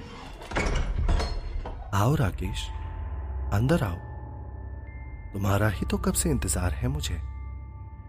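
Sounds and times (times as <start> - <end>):
door swinging open with a scraping rumble and creak: 0.0 - 2.2
speech: 2.0 - 2.8, 3.5 - 4.1, 5.3 - 7.3.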